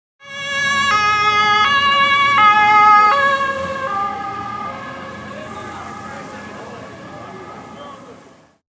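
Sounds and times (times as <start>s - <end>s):
police siren: 0.2s - 8.6s.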